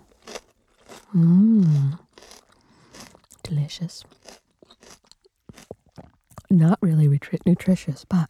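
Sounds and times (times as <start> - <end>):
crunchy celery being chewed: 0.0 - 8.2
speech: 1.1 - 2.0, 3.6 - 4.2, 6.5 - 8.2
person humming: 1.2 - 2.0.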